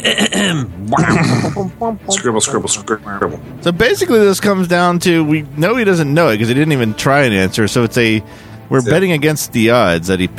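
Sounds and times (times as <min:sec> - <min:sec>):
throat clearing: 0:00.0 - 0:01.6
speech: 0:00.0 - 0:10.3.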